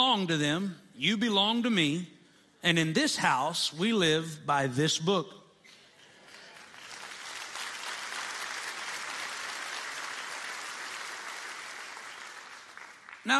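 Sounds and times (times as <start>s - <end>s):
speech: 0.2s - 5.4s
crowd applauding: 6.0s - 13.3s.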